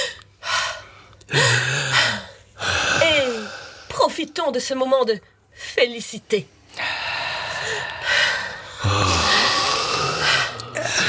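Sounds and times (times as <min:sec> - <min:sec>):
deep breath: 0:00.4 - 0:03.9, 0:06.8 - 0:11.0
speech: 0:04.2 - 0:06.6.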